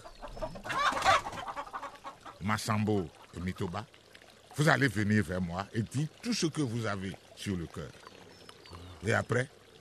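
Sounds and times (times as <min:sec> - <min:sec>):
young rooster clucking: 0:00.0 - 0:02.4
speech: 0:02.4 - 0:04.0, 0:04.6 - 0:08.0, 0:09.0 - 0:09.6.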